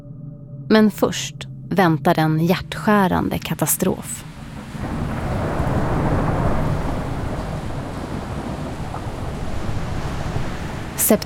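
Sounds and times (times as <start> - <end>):
low rumbling: 0.0 - 11.2
speech: 0.7 - 4.3, 11.1 - 11.2
rushing floodwater: 3.6 - 11.2
heavy wind in a hurricane storm: 4.1 - 11.2.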